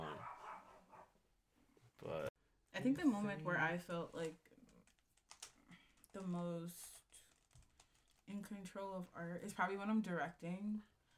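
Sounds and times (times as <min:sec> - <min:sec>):
dog barking: 0:00.0 - 0:01.2
speech: 0:02.0 - 0:04.5, 0:06.1 - 0:07.0, 0:08.3 - 0:10.9.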